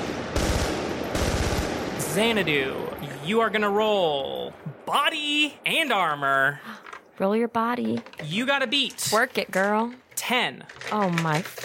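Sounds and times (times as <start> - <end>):
loud rapid gunfire bursts: 0.0 - 2.4
speech: 2.2 - 11.6.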